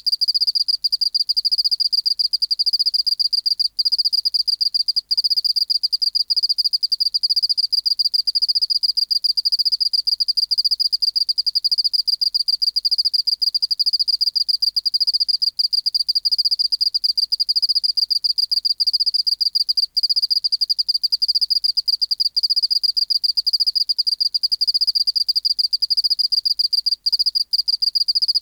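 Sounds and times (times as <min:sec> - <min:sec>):
Oceanic field cricket Teleogryllus oceanicus chirping: 0:00.1 - 0:28.3.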